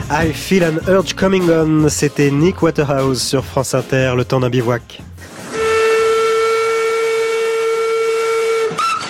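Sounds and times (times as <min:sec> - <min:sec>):
speech: 0:00.1 - 0:05.1
steam locomotive whistle: 0:05.3 - 0:09.0.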